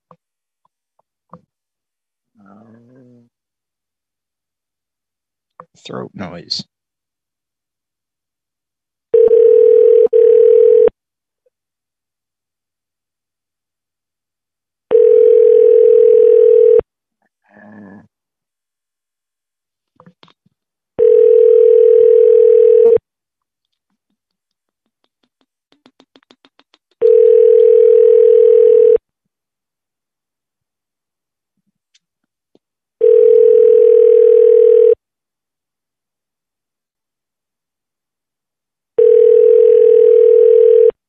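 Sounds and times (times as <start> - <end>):
speech: 5.8 - 6.7
telephone ringback tone while placing a call to a convenience store: 9.2 - 10.9, 14.9 - 16.8, 21.0 - 23.0, 27.0 - 29.0, 33.0 - 35.0, 39.0 - 41.0.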